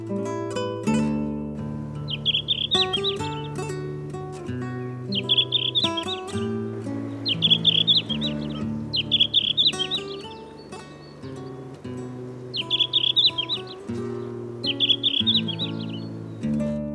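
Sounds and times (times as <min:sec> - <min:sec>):
continuous musical backing: 0:00.8 - 0:16.9
red-flanked bluetail singing whistled phrases: 0:02.0 - 0:03.8, 0:04.9 - 0:16.4.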